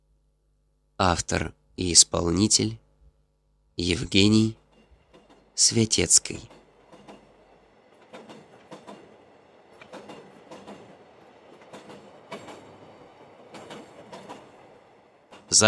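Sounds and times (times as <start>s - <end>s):
speech: 1.0s - 2.8s, 3.8s - 4.6s, 5.6s - 6.6s
electric commuter train rumbling heard from inside the train: 4.1s - 15.6s
commuter train wheels clacking over rail joints: 4.6s - 5.6s, 6.4s - 15.6s.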